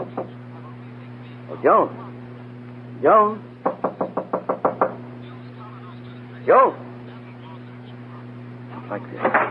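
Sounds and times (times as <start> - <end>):
steady low hum: 0.0 - 9.4
speech: 1.6 - 2.0, 3.0 - 3.5, 6.4 - 6.8, 8.9 - 9.4
firm knocking on a wooden door: 3.6 - 5.0.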